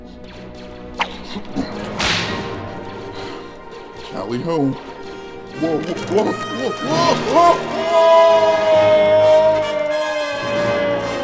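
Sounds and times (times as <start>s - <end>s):
whip cracking toward a ceiling hook: 1.0s - 2.7s
laughter: 1.2s - 2.0s, 4.1s - 11.2s
speech: 4.1s - 4.9s, 5.6s - 9.4s.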